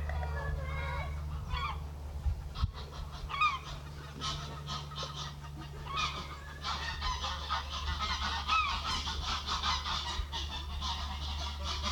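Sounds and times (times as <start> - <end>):
rushing wind: 0.0 - 3.5
low rumble: 0.0 - 9.0
birds clattering outdoors on a very windy day: 0.0 - 11.8.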